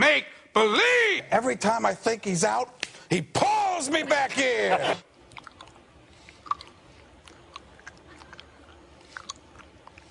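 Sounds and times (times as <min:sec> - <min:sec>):
speech: 0:00.1 - 0:05.1
mouth smacking and clicking of mimed gum chewing: 0:05.2 - 0:10.0.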